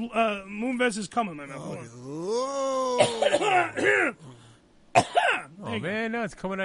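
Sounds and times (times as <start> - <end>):
speech: 0.0 - 4.3, 5.0 - 6.6
drawn-out vocal groan: 1.6 - 4.6
rough strained coughs: 2.9 - 4.3, 5.0 - 5.6.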